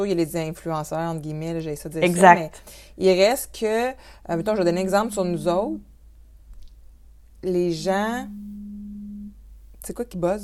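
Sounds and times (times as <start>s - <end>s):
speech: 0.0s - 5.9s, 7.4s - 8.5s, 9.8s - 10.4s
mobile phone vibrating with an incoming call: 8.0s - 9.5s.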